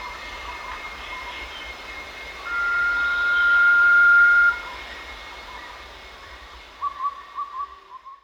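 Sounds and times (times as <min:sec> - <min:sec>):
blue-banded pitta whistling call: 0:02.4 - 0:04.8, 0:06.8 - 0:08.2.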